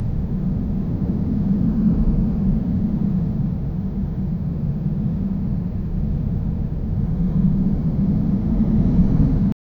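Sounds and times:
desert wind: 0.0 - 9.6.

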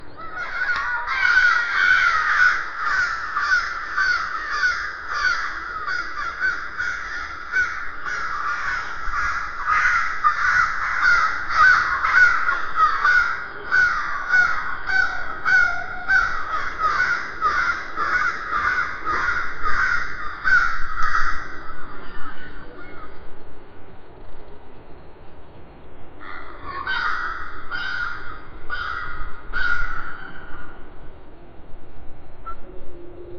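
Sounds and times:
seagull calling, slowed: 0.0 - 23.2, 26.2 - 30.9
crows cawing, slowed: 0.2 - 23.2, 26.2 - 31.0.

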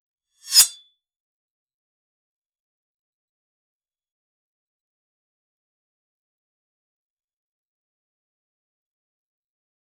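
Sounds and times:
thin and sharp sword slash: 0.4 - 0.8.

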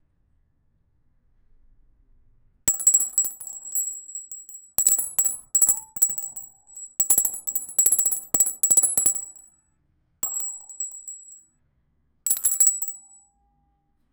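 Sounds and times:
golden metal coins clinking: 2.7 - 9.4, 10.2 - 11.4, 12.3 - 13.1.

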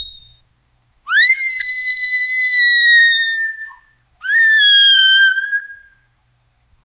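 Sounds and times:
panicked little kid screaming: 1.1 - 5.9.

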